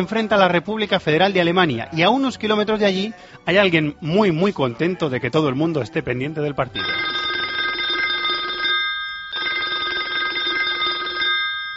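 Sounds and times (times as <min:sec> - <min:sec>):
speech: 0:00.0 - 0:07.2
telephone ringing at a taquería: 0:06.7 - 0:11.7.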